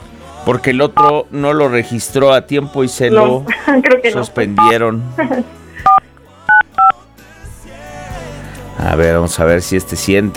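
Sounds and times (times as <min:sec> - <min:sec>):
speech: 0:00.4 - 0:05.6, 0:08.8 - 0:10.3
telephone keypad dialing tones: 0:04.6 - 0:04.8, 0:05.8 - 0:06.9.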